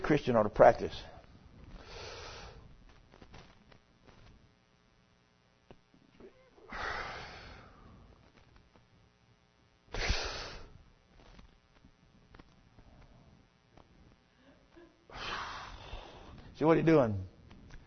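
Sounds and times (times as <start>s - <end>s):
speech: 0.1s - 1.2s, 16.6s - 17.3s
loud deliberate breaths with snorting wheezy edges: 6.7s - 8.1s, 15.1s - 16.5s.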